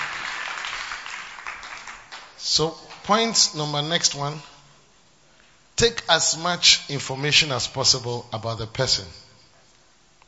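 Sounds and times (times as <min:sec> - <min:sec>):
audience clapping: 0:00.0 - 0:03.4
speech: 0:02.4 - 0:04.5, 0:05.8 - 0:09.2.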